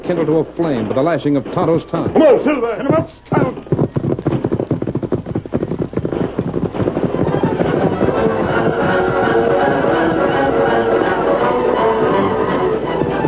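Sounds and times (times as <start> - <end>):
gunshots fired at night by mounted pursuers during a chase: 0.0 - 11.4
speech: 0.1 - 3.7
loud dense rumble: 2.9 - 13.2.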